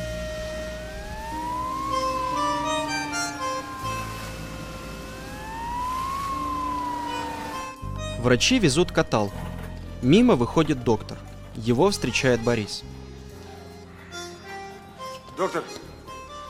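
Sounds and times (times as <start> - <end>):
ambulance siren wailing as it speeds along a highway: 0.0 - 9.4, 11.3 - 14.4
speech: 8.2 - 9.4, 10.0 - 13.0, 15.4 - 15.8.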